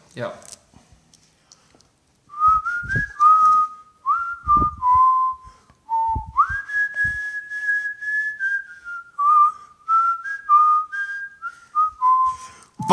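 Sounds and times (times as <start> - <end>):
speech: 0.2 - 0.6
person whistling a pop song melody: 2.3 - 12.9
faint low thumps: 4.4 - 5.3, 5.9 - 7.2.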